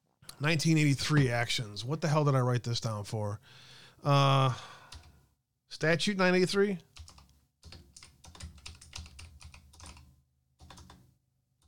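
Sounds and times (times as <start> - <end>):
speech: 0.4 - 4.8, 5.7 - 6.9
rapid typing on a computer keyboard: 4.9 - 5.1, 6.9 - 11.6.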